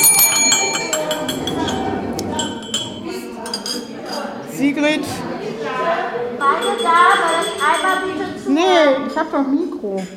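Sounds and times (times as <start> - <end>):
small hand bell ringing: 0.0 - 1.7, 6.4 - 8.1
murmur of people chatting at a storytelling café gathering: 0.0 - 10.1
speech: 4.8 - 5.2, 6.7 - 10.1.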